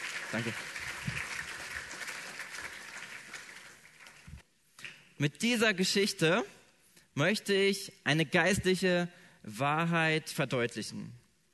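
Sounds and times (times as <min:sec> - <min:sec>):
audience clapping: 0:00.0 - 0:05.0
speech: 0:00.3 - 0:01.2, 0:05.2 - 0:06.6, 0:07.2 - 0:11.2.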